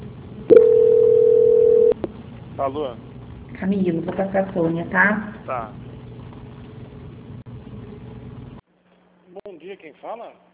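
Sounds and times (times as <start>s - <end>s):
telephone line tone during a call transfer: 0.5s - 2.0s
speech: 2.6s - 5.8s, 9.8s - 10.5s.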